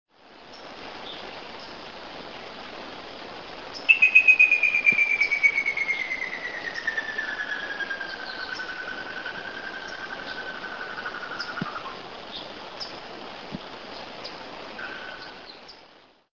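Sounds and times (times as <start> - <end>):
Merulaxis ater calling: 3.8 - 12.0.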